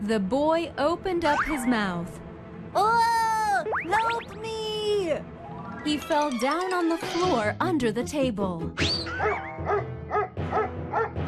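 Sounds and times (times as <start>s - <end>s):
speech: 0.0s - 2.2s, 2.8s - 3.2s, 3.8s - 9.9s
dog barking: 9.1s - 11.2s.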